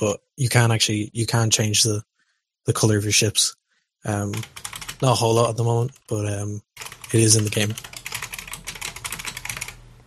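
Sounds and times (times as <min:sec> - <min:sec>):
speech: 0:00.0 - 0:07.9
typing on a computer keyboard: 0:04.3 - 0:05.1, 0:06.8 - 0:09.8.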